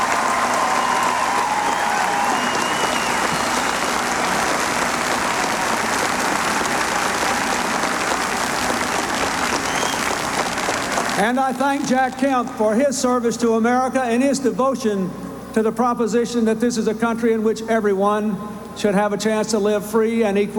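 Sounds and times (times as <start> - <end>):
faint cheers: 0.0 - 11.2
large crowd clapping: 0.0 - 11.6
speech: 11.2 - 20.5.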